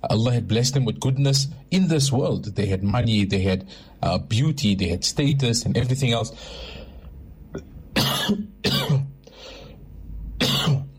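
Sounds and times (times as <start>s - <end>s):
speech: 0.0s - 6.8s, 7.5s - 7.7s, 8.3s - 9.0s
person coughing from something caught in the throat: 7.6s - 9.1s, 10.4s - 10.9s.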